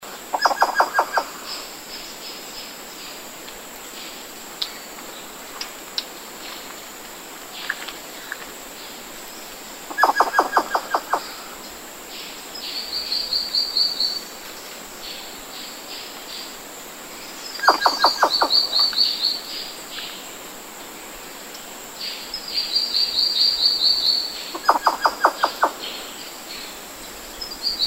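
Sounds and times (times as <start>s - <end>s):
Protoxerus stangeri African giant squirrel calling: 0.3s - 1.5s, 9.9s - 11.5s, 17.5s - 19.6s, 22.7s - 26.2s.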